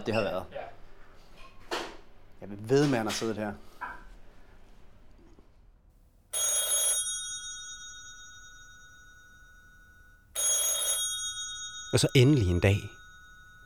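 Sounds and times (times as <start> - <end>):
speech: 0.0 - 0.7, 2.4 - 3.7, 11.9 - 13.0
telephone bell ringing: 6.4 - 13.6.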